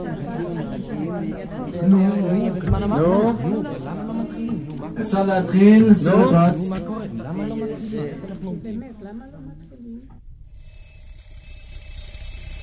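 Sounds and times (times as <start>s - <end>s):
speech: 1.2s - 10.2s
steady bright electronic ringing: 10.5s - 12.6s.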